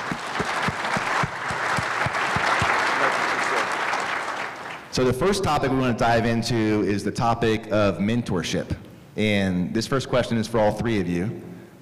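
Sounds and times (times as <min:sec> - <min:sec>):
audience applause for panelists: 0:00.0 - 0:04.9
speech: 0:05.0 - 0:11.7.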